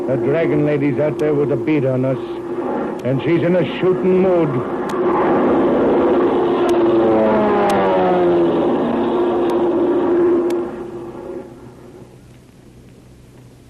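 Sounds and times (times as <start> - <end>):
propeller-plane engine droning overhead: 0.0 - 13.6
speech: 0.1 - 5.2.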